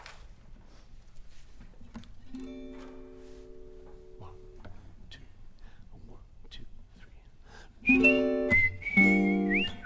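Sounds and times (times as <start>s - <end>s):
light noise: 0.0s - 9.8s
person whistling a song melody: 7.8s - 9.8s.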